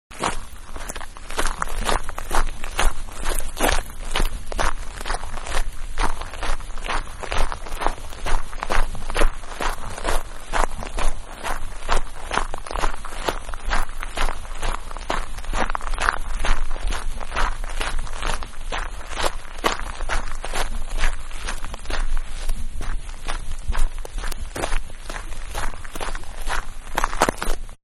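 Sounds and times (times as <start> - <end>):
human footsteps walking on gravel at medium speed: 0.1 - 27.8.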